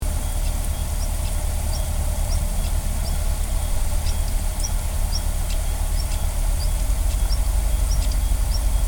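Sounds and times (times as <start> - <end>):
stonechat calling: 0.2 - 8.8.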